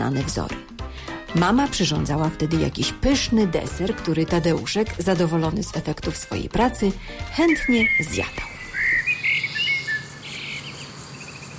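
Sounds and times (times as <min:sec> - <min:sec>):
speech: 0:00.1 - 0:08.5
birds singing outdoors in spring: 0:06.7 - 0:11.5.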